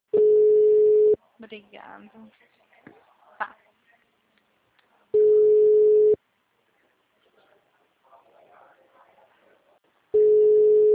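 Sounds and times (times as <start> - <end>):
faint low noise: 0.1 - 10.9
outgoing phone call ringback tone: 0.2 - 1.2, 5.2 - 6.2, 10.2 - 10.9
speech: 1.5 - 3.6.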